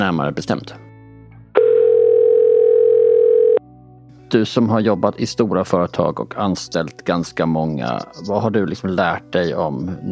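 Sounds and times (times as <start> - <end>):
speech: 0.0 - 0.9, 4.3 - 10.0
telephone dial tone while placing a call: 1.6 - 3.6.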